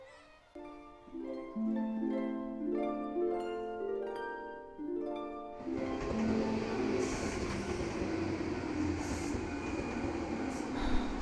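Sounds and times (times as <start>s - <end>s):
melodic musical tones: 0.0s - 8.5s
train arriving at a wartime railway station: 5.6s - 11.2s.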